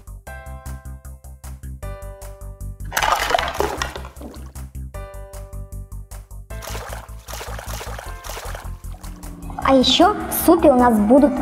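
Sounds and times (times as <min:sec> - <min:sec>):
bouncy rhythmic music: 0:00.0 - 0:11.4
vegetables being rinsed in water: 0:02.9 - 0:04.6, 0:06.6 - 0:08.9
vegetables being washed in water splashing and sloshing: 0:02.9 - 0:04.6, 0:06.6 - 0:09.4
speech: 0:09.7 - 0:11.4.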